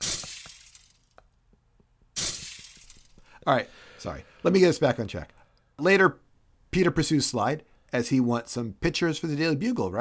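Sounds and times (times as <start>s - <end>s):
glass window shattering: 0.0s - 1.0s, 2.2s - 3.1s
falling glass shards tinkling: 0.0s - 1.1s, 2.2s - 3.1s
speech: 3.4s - 6.2s, 6.8s - 9.9s.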